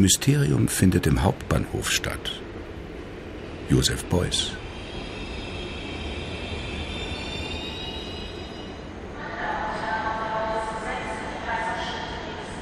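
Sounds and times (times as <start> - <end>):
speech: 0.0 - 2.4, 3.7 - 4.6
train rumbling past through a main railway station: 0.0 - 12.6
high metallic train wheel squeals: 4.8 - 8.8.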